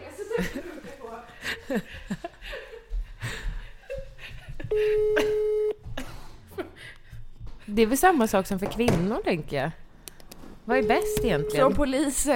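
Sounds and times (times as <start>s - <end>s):
people chatting: 0.0s - 1.8s, 7.7s - 9.8s, 10.7s - 12.3s
people laughing: 0.2s - 6.9s
speech: 0.4s - 0.7s, 1.4s - 2.6s, 7.8s - 9.8s, 10.7s - 12.3s
phone call busy-signal tone: 4.7s - 5.8s, 10.8s - 11.9s
telephone call ringing: 4.7s - 5.8s, 10.8s - 12.0s.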